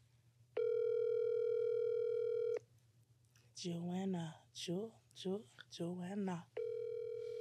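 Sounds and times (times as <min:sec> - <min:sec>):
faint low hum: 0:00.0 - 0:07.3
electronic ringback tone from an outgoing phone call: 0:00.6 - 0:02.6, 0:06.6 - 0:07.3
speech: 0:03.6 - 0:06.5.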